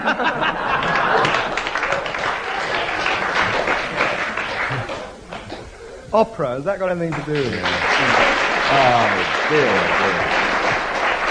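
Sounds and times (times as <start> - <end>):
crowd applauding: 0.0 - 5.7, 6.8 - 11.2
laughter: 0.0 - 6.1, 7.2 - 11.0
speech: 6.1 - 10.3.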